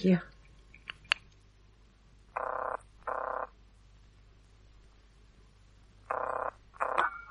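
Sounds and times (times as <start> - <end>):
buzzy double telephone ringing tone down the line: 2.4 - 3.5, 6.1 - 7.3.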